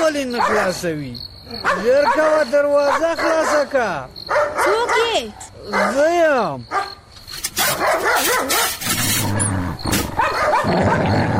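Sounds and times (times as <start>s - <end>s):
speech: 0.1s - 7.0s, 7.7s - 9.4s, 10.5s - 11.3s
dog barking at a door: 0.4s - 0.7s, 1.6s - 3.7s, 4.3s - 6.1s, 6.7s - 7.0s, 7.6s - 8.8s, 10.1s - 11.2s
dog snarling at a door: 7.6s - 11.3s.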